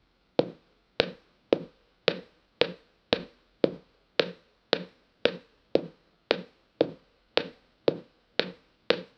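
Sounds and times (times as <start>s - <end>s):
single human footstep in boots: 0.4s - 9.1s.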